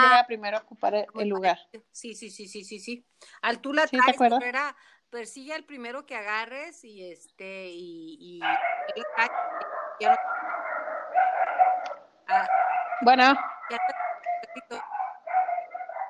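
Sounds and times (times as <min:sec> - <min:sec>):
speech: 0:00.2 - 0:10.4, 0:12.3 - 0:15.0
dogs barking and yipping: 0:08.4 - 0:16.0.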